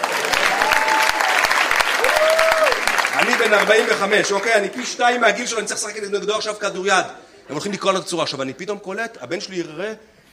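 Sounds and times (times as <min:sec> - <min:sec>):
audience applauding at a live show: 0:00.0 - 0:05.6
speech: 0:03.4 - 0:10.2.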